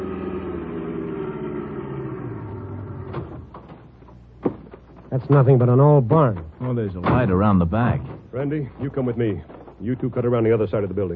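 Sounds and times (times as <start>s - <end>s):
car engine droning while driving: 0.0s - 3.7s
speech: 5.2s - 11.1s.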